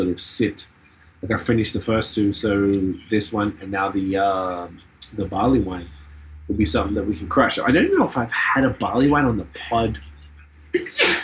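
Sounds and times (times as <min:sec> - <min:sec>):
speech: 0:00.0 - 0:10.1, 0:10.7 - 0:11.2
person sneezing forcefully: 0:10.8 - 0:11.2.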